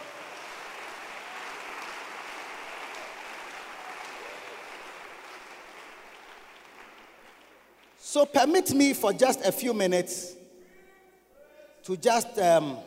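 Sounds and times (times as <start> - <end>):
crowd clapping: 0.0 - 8.0
speech: 8.1 - 10.4, 11.9 - 12.8.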